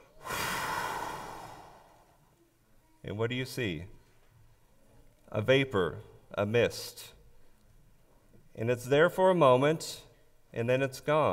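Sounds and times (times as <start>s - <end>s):
deep exhaling breath outside on a cold winter morning: 0.0s - 2.3s
speech: 3.1s - 4.0s, 5.3s - 7.2s, 8.6s - 11.3s.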